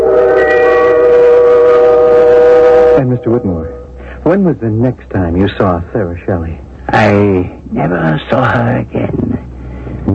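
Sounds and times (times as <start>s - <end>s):
train whistle blast in thick fog: 0.0s - 4.0s
faint train rumble: 0.0s - 10.1s
speech: 3.1s - 9.5s.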